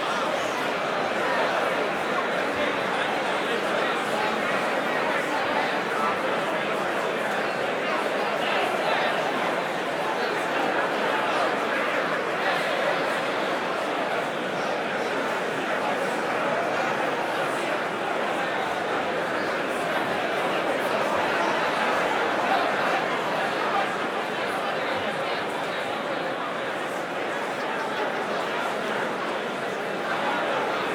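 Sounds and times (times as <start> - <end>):
crowd noise: 0.0 - 30.9.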